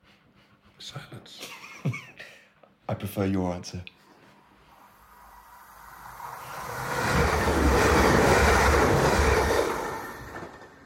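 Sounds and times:
speech: 0:00.8 - 0:02.1, 0:02.9 - 0:03.9
train roaring past the window: 0:04.7 - 0:10.8.

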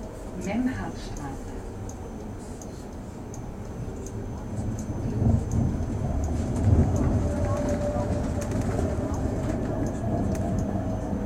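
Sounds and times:
faint constant whine inside a tram: 0:00.0 - 0:11.2
tram car rolling along heard from inside: 0:00.0 - 0:11.2
voices murmuring faintly in a tram: 0:03.8 - 0:11.2.

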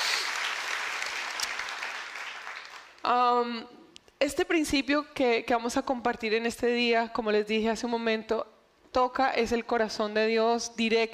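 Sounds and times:
audience applause: 0:00.0 - 0:03.0
speech: 0:03.1 - 0:11.1.

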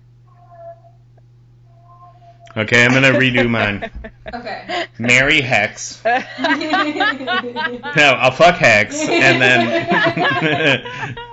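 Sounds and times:
steady low hum: 0:00.0 - 0:11.3
cat yowling and meowing: 0:00.3 - 0:01.0, 0:01.8 - 0:02.4
speech: 0:02.6 - 0:11.1
laughter: 0:02.7 - 0:11.3.

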